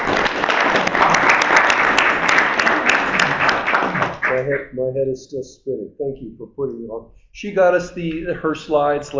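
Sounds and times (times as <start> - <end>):
room full of people applauding: 0.0 - 4.5
speech: 4.5 - 9.1.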